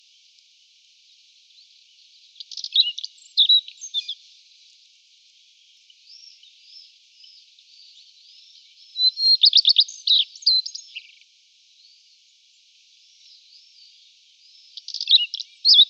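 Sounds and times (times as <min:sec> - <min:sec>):
common redstart singing: 0:02.4 - 0:04.2, 0:06.0 - 0:11.2, 0:13.1 - 0:15.8.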